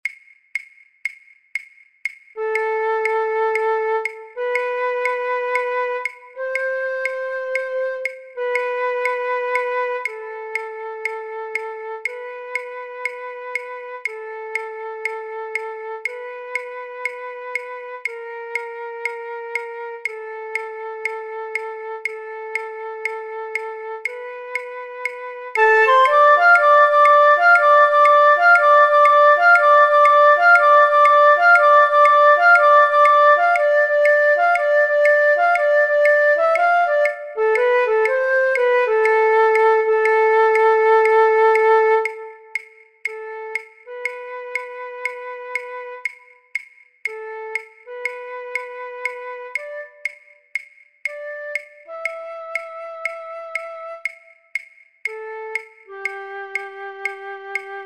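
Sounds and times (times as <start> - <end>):
flute: 2.4 - 57.8
violin: 25.5 - 33.6.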